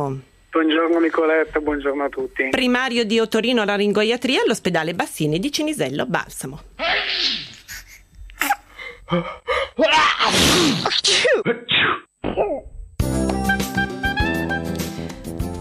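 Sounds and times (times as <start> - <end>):
speech: 0.0 - 7.5, 9.1 - 11.7
person sneezing: 6.8 - 8.7, 9.8 - 12.7
music: 13.0 - 15.5.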